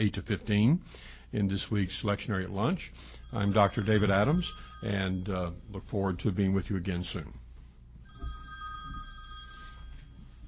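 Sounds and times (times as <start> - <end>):
speech: 0.0 - 7.4
telephone ringing in an electronic trill: 3.0 - 5.7, 8.1 - 10.4.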